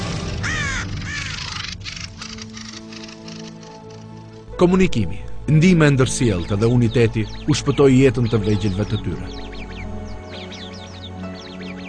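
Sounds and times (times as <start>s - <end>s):
crow cawing: 0.3s - 4.2s
speech: 4.6s - 9.4s.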